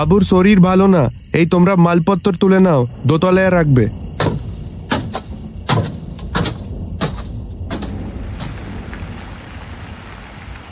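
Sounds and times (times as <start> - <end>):
speech: 0.0 - 4.0
sharp clatters and knocks: 4.2 - 8.8
moderate rain falling outside: 7.7 - 10.7.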